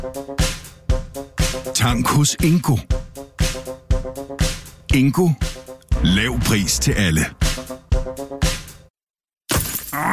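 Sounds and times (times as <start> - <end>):
speech: 0.0 - 3.1, 4.9 - 7.4
car windscreen glass cracking and shattering: 9.5 - 10.0
stone chip striking a car windscreen: 9.5 - 10.0.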